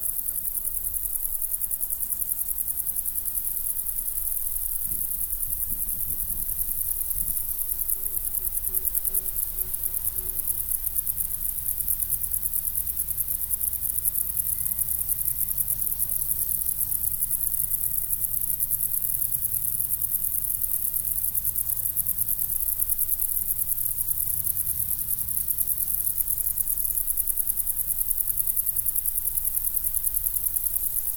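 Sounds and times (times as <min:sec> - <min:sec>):
crickets shimmering in a meadow: 0:00.0 - 0:31.1.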